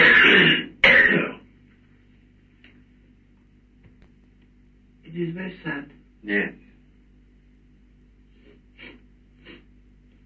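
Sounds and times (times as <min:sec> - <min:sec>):
person letting out a rough raspy cough: 0:00.0 - 0:01.4
person clearing throat harshly: 0:00.0 - 0:01.5
speech: 0:05.2 - 0:06.6.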